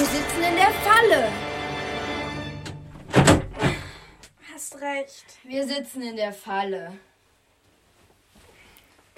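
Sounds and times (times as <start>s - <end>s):
speech: 0.2s - 1.5s, 4.8s - 7.1s
stuck door being shoved and thudding: 2.6s - 3.9s.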